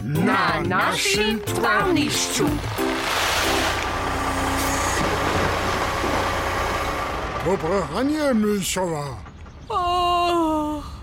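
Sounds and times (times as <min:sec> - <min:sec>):
speech: 0:00.1 - 0:03.7, 0:07.4 - 0:10.1
truck engine rumbling: 0:00.7 - 0:10.7.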